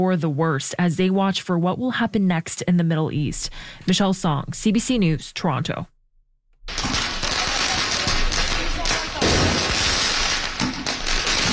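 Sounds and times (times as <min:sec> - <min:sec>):
speech: 0:00.0 - 0:05.9
firecrackers exploding at a street protest: 0:06.6 - 0:11.5.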